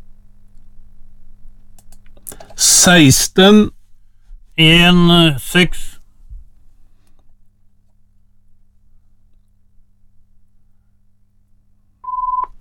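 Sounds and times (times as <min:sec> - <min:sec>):
low hum: 0:00.0 - 0:12.5
speech: 0:02.6 - 0:03.8, 0:04.6 - 0:05.9
electronic telephone ring tone: 0:12.1 - 0:12.5.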